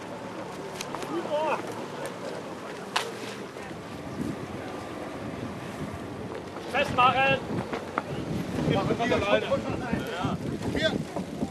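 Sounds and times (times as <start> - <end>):
outboard motors rumbling on open water: 0.0 - 11.5
gusty wind buffeting the microphone: 3.7 - 11.5
speech: 6.9 - 7.5, 9.0 - 10.1.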